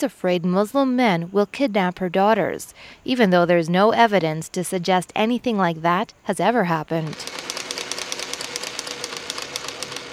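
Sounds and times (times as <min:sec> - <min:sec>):
speech: 0:00.0 - 0:07.5
sewing machine stitching shoes from recycled rubber: 0:07.0 - 0:10.1.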